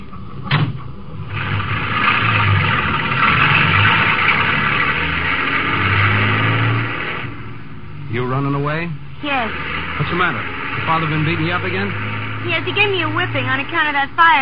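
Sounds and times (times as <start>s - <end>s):
truck engine idling and revving on a highway at night: 0.0s - 14.4s
speech: 8.4s - 14.4s.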